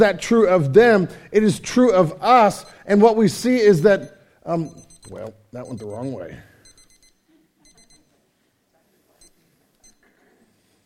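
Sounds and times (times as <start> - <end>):
speech: 0.0 - 6.5
digital timer beeping in high-pitched bursts: 4.0 - 8.1.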